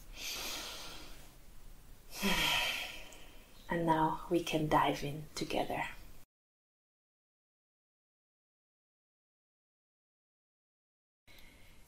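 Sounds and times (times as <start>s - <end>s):
deep conscious breath: 0.0s - 1.3s, 2.1s - 3.5s, 11.3s - 11.8s
speech: 3.7s - 6.0s.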